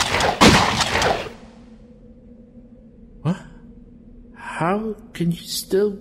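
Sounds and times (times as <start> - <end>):
gunshot fired at a man's forehead and chest: 0.0 - 1.4
steady low hum: 0.0 - 6.0
speech: 4.6 - 6.0.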